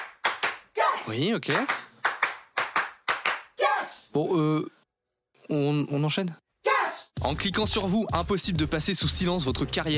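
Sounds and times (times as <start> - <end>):
sharp hand claps in a loose syncopated rhythm: 0.0 - 0.7, 1.4 - 3.5
speech: 1.0 - 1.9, 3.8 - 4.8, 5.5 - 6.4, 7.2 - 9.9.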